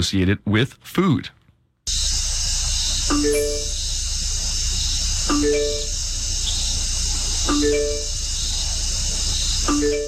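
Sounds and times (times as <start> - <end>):
speech: 0.0 - 1.4, 3.1 - 3.8, 5.3 - 5.9, 7.5 - 8.0
constant hiss of night insects: 1.9 - 10.0
chirping call, part frog croak and part electronic ringtone: 2.8 - 10.0.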